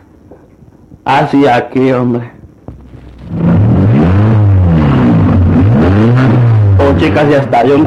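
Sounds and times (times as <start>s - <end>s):
speech: 1.0s - 2.4s, 7.0s - 7.8s
car engine cranking, starting and revving: 2.8s - 7.5s.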